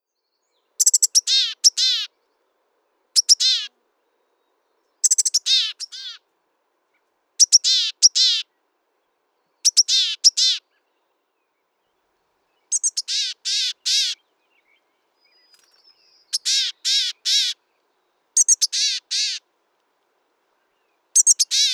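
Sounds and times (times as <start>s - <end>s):
gray headed chickadee calling: 0.8s - 2.2s, 3.2s - 3.7s, 5.0s - 6.2s, 7.4s - 8.6s, 9.6s - 10.8s, 12.6s - 14.3s, 15.3s - 17.7s, 18.4s - 19.5s, 21.2s - 21.7s.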